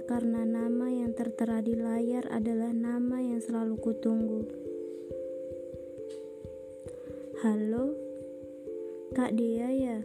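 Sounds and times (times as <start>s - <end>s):
speech: 0.1s - 4.6s, 7.4s - 8.0s, 9.1s - 10.0s
mobile phone electronic ringtone: 3.8s - 10.0s.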